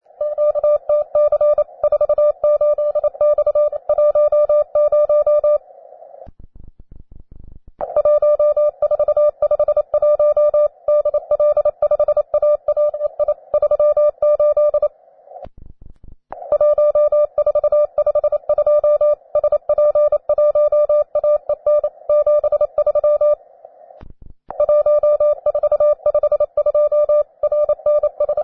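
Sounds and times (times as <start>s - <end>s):
beginner training CW morse code tones: 0.2s - 5.6s, 7.8s - 14.9s, 16.4s - 23.4s, 24.5s - 28.4s.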